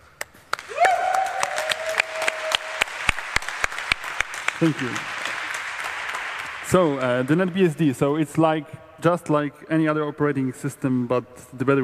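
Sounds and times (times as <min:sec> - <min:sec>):
audience applause for organizers and volunteers at an event: 0:00.5 - 0:07.6
speech: 0:04.6 - 0:05.1, 0:06.7 - 0:11.8.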